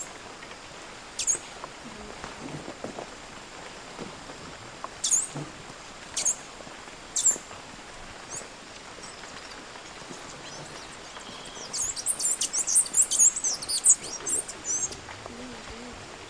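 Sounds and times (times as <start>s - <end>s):
steady hiss: 0.0s - 16.2s
dense burst of very high squeaky bird twittering: 1.2s - 1.4s, 7.2s - 7.4s, 10.4s - 15.0s.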